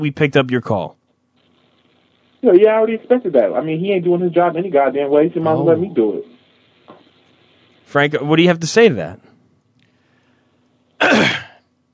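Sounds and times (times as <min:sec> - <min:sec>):
speech: 0:00.0 - 0:01.0, 0:02.4 - 0:06.3, 0:07.9 - 0:09.3, 0:11.0 - 0:11.4
faint low hum: 0:00.0 - 0:11.9
man coughing: 0:11.0 - 0:11.6.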